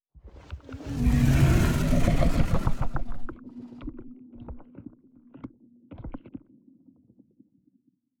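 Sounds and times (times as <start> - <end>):
space dragon idling: 0.8 - 3.3.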